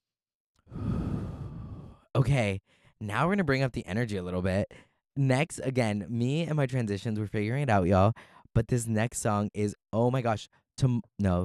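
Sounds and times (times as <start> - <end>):
deep breath: 0.7 - 3.0, 8.2 - 8.5
speech: 2.2 - 11.4.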